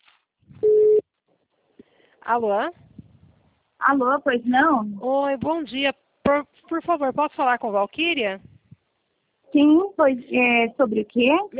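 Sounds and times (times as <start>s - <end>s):
telephone line beep while a call is placed: 0.6s - 1.0s
speech: 2.3s - 2.8s, 3.8s - 8.5s, 9.5s - 11.5s.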